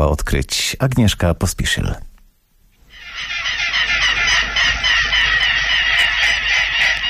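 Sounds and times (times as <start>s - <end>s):
speech: 0.3s - 2.1s
family of adult and young birds honking by a pond: 2.9s - 7.0s.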